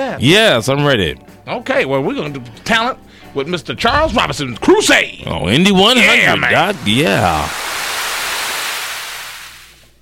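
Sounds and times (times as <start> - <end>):
speech: 0.0 - 7.6
toilet flushing: 6.1 - 9.8.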